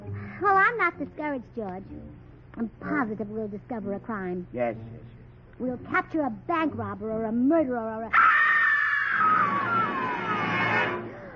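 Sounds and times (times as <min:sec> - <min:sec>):
speech: 0:00.4 - 0:08.3, 0:09.2 - 0:10.4
woman screaming: 0:08.1 - 0:11.0.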